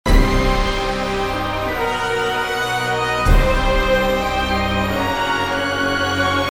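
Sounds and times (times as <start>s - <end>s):
epic full orchestra playing counterpoint: 0.1s - 6.5s.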